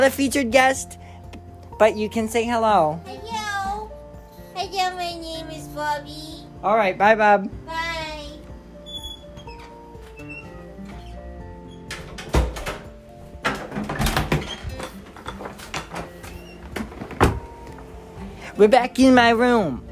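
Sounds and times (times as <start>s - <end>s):
speech: 0.0s - 1.0s, 1.8s - 3.1s, 5.8s - 7.7s, 18.6s - 19.9s
door creaking with squeaky groans: 8.8s - 17.8s
door slamming: 11.7s - 17.6s.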